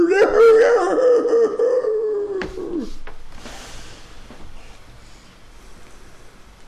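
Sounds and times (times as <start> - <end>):
voice imitating a hunting howl: 0.0 - 3.0
quieter noise: 0.0 - 6.6.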